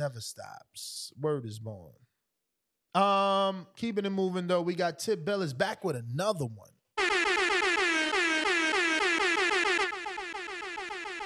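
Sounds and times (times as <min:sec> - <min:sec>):
speech: 0:00.0 - 0:02.1, 0:02.9 - 0:07.1
air horn blasts sliding downward in pitch: 0:07.0 - 0:11.2.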